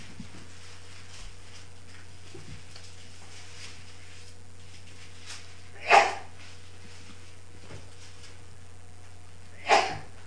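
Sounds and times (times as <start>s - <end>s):
low steady hum in a quiet room: 0.0s - 10.2s
sneezes: 5.8s - 6.3s, 9.6s - 10.1s.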